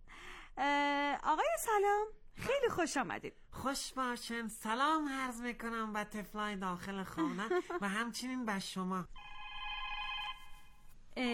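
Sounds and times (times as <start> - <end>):
speech: 0.6 - 9.3, 11.2 - 11.3
electronic telephone ringing in a studio: 9.2 - 10.8.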